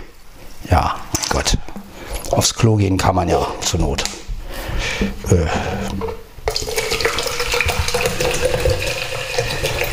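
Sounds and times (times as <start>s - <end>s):
speech: 2.3s - 4.2s, 5.0s - 6.0s
mineral water poured into a glass: 6.5s - 9.9s.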